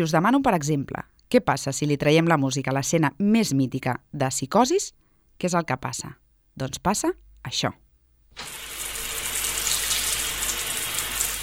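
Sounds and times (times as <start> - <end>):
speech: 0.0 - 7.8, 8.4 - 8.6
shower water spray running: 8.4 - 11.4.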